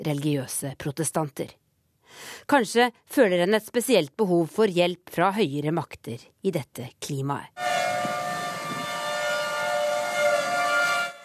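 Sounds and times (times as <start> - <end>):
speech: 0.0 - 7.7
tornado warning siren wailing: 7.6 - 11.2.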